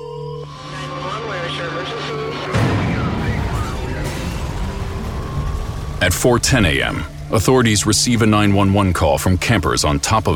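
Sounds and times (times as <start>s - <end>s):
fire alarm wailing: 0.5s - 8.7s
loud rumbling burst: 0.5s - 9.2s
speech: 6.0s - 10.3s.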